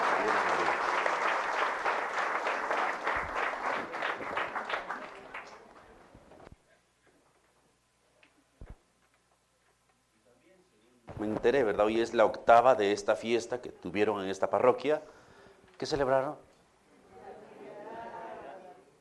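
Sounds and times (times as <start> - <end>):
crowd clapping for newlyweds: 0.0 - 6.5
speech: 11.4 - 15.2, 15.8 - 16.5.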